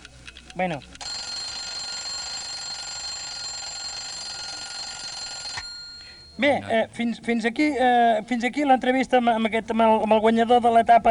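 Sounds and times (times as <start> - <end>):
speech: 0.6 - 1.0, 6.4 - 11.0
alarm clock ringing with a shrill electric jangle: 1.0 - 6.6.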